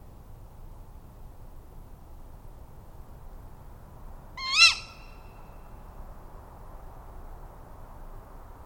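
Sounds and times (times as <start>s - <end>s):
faint background hiss: 0.0s - 8.6s
tawny owl call: 4.4s - 5.4s.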